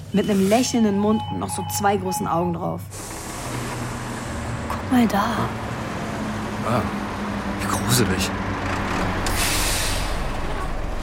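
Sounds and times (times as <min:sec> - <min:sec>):
truck engine rumble as it pulls up and stops beside a petrol station shop: 0:00.0 - 0:11.0
speech: 0:00.1 - 0:03.7, 0:04.9 - 0:05.6, 0:06.6 - 0:07.0, 0:07.9 - 0:08.4
truck air-brake hiss: 0:09.3 - 0:10.3.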